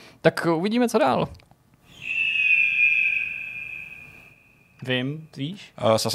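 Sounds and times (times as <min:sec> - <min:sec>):
speech: 0:00.2 - 0:01.4, 0:04.8 - 0:06.1
video game eagle screech during a leap: 0:01.9 - 0:05.0.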